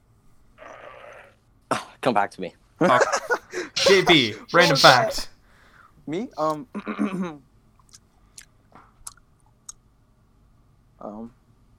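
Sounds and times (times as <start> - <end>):
speech: 2.0 - 5.3, 6.1 - 7.5, 11.0 - 11.4
laughter: 2.8 - 5.3
loud gum chewing: 7.8 - 9.8.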